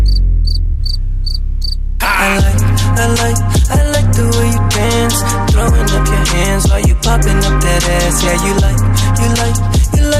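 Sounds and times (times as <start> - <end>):
crickets chirping: 0.0 - 1.8
music with deep heavy bass beat: 0.0 - 10.1
speech: 3.0 - 9.8.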